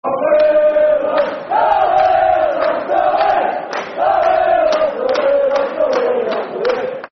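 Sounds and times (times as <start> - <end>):
football crowd chanting: 0.0 - 7.1.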